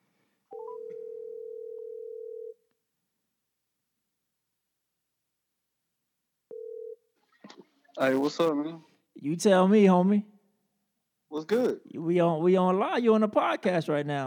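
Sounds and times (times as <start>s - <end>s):
electronic ringback tone of an outgoing phone call: 0.5s - 2.6s, 6.5s - 7.0s
speech: 8.0s - 10.3s, 11.4s - 14.2s.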